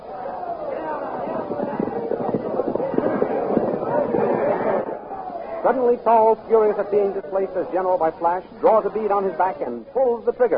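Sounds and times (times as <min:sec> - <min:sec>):
charging army of many voices shouting: 0:00.0 - 0:07.7
speech: 0:05.7 - 0:10.5.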